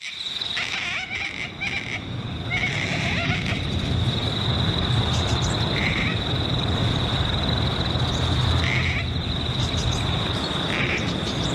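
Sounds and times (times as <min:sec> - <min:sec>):
gang-gang cockatoo creaky squeaky-gate calls: 0:00.0 - 0:03.8, 0:05.3 - 0:06.2, 0:08.6 - 0:09.8, 0:10.7 - 0:11.2
steady high insect drone: 0:00.0 - 0:11.5
low outdoor rumble: 0:00.5 - 0:11.5.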